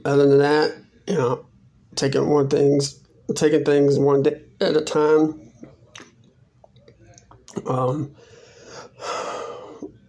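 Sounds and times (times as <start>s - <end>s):
speech: 0.0s - 5.4s, 7.6s - 8.3s
labored rasping breathing: 8.1s - 10.0s
person gasping for air: 8.2s - 9.9s.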